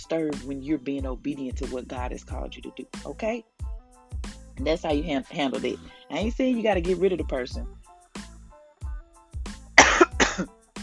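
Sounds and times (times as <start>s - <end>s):
speech: 0.0s - 3.8s, 4.6s - 7.8s
person clearing throat: 9.8s - 10.5s
person coughing harshly with something caught in the throat: 9.8s - 10.5s.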